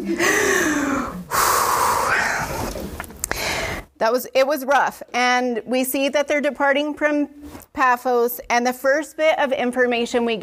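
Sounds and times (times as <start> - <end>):
speech: 0.0 - 0.5, 4.0 - 10.4
deep breath drawn in and let out during a Bible teaching session: 0.0 - 3.9.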